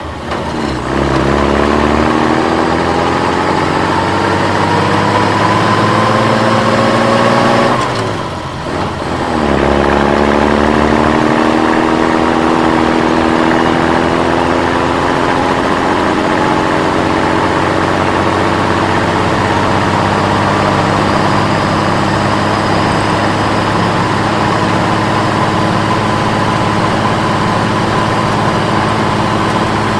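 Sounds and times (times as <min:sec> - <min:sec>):
vehicle engine throttling in second gear: 0:00.0 - 0:29.9.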